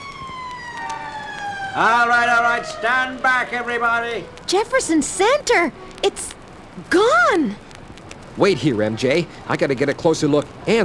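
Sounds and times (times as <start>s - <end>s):
police siren wailing: 0.0s - 7.1s
faint traffic rumble: 0.0s - 10.8s
speech: 1.8s - 7.6s, 8.4s - 10.8s.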